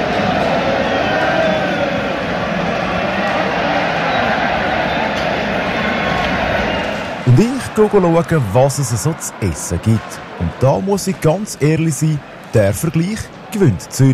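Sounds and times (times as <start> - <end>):
large arena crowd roaring and cheering doing the wave: 0.0 - 14.1
speech: 7.3 - 14.1.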